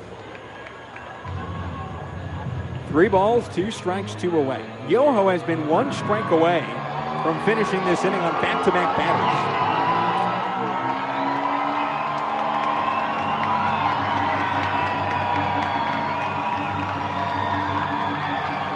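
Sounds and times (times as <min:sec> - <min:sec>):
baseball stadium crowd roaring and cheering: 0:00.0 - 0:18.7
speech: 0:02.9 - 0:09.7.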